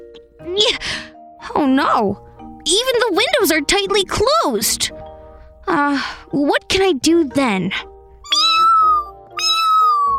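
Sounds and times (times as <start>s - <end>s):
speech: 0.5s - 5.0s, 5.7s - 7.9s
cat meowing: 8.2s - 10.1s.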